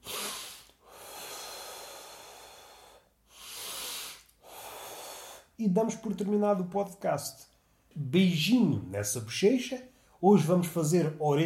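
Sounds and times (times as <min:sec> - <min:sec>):
slow deep breaths: 0:00.0 - 0:05.6
speech: 0:05.6 - 0:11.4.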